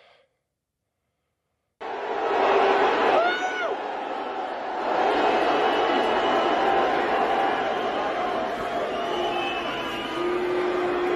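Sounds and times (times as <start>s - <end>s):
large arena crowd booing: 1.8s - 11.1s
sharp whistles from arena crowd: 5.4s - 11.1s.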